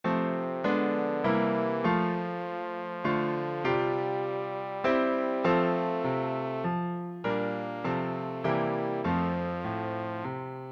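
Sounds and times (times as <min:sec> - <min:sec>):
trombone playing carol: 0:00.4 - 0:06.7, 0:07.4 - 0:10.3.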